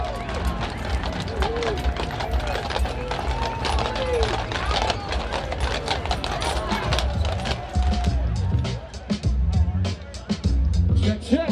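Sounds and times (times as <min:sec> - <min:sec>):
heavy Clydesdale horses' hooves clip-clopping over pavement: 0:00.0 - 0:08.7
loud outdoor crowd with chattering voices around a stadium: 0:00.0 - 0:11.5.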